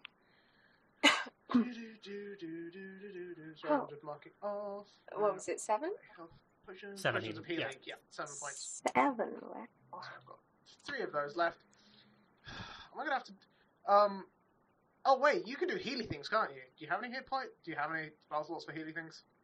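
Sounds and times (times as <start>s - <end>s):
voice acting out coughing and spluttering: 1.0s - 1.7s
throat clearing: 1.0s - 1.9s
speech: 1.5s - 11.8s, 12.5s - 14.4s, 15.0s - 19.3s.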